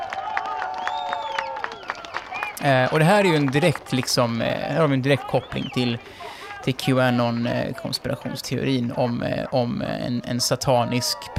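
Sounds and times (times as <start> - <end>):
crowd clapping in a steady quick rhythm: 0.0 - 9.5
speech: 2.6 - 11.3
raised voices: 4.6 - 11.3.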